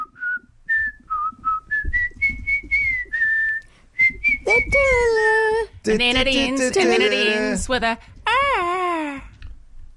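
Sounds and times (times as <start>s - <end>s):
person whistling a short tune: 0.0s - 4.8s
faint low noise: 0.0s - 9.9s
speech: 5.8s - 8.1s.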